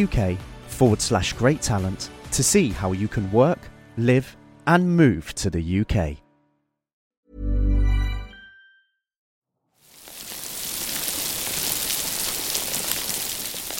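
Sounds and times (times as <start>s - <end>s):
speech: 0.0s - 6.2s
underwater crackling of a healthy coral reef: 10.1s - 13.7s.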